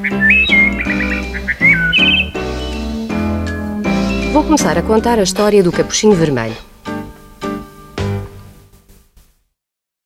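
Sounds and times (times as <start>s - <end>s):
bright songbird chirping and trilling: 0.0s - 7.2s
soft musical backing: 0.0s - 9.4s
speech: 4.4s - 6.7s.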